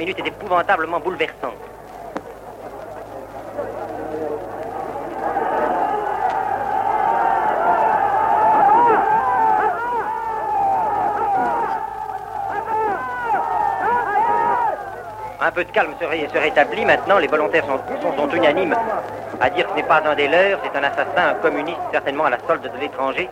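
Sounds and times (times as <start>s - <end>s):
speech: 0.0s - 1.8s, 15.6s - 23.3s
large angry crowd shouting: 1.7s - 23.3s.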